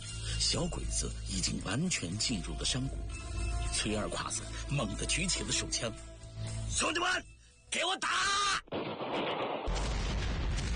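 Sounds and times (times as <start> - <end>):
speech: 0.4 - 6.1, 6.7 - 8.4
explosives detonating at a valley entrance: 8.7 - 10.7.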